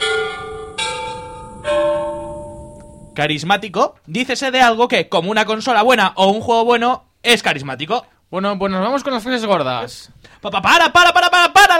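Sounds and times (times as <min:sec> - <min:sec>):
bells ringing as a sound effect: 0:00.0 - 0:03.2
speech: 0:03.2 - 0:11.7.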